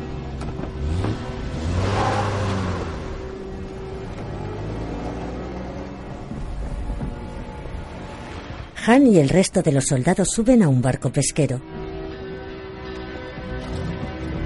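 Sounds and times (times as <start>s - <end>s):
jeep engine pulling away: 0.0s - 8.7s
speech: 8.8s - 11.7s.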